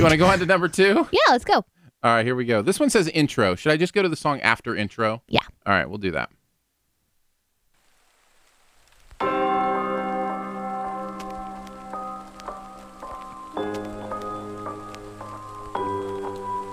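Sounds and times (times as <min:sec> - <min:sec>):
speech: 0:00.0 - 0:06.4
rain pattering: 0:07.7 - 0:16.7.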